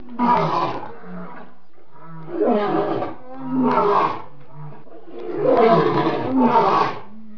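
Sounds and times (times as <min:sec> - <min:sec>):
lion roaring in deep grunting bursts: 0:00.2 - 0:07.1.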